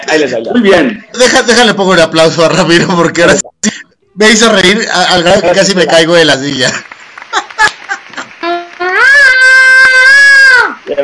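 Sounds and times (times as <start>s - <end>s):
speech: 0.1s - 7.8s
laughter: 5.1s - 9.1s
person imitating a hard-rock singer's high scream: 8.4s - 10.8s.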